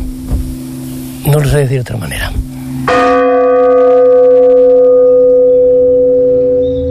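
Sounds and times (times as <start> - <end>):
speech: 1.2 - 3.2
single church bell tolling a lament: 2.8 - 6.9.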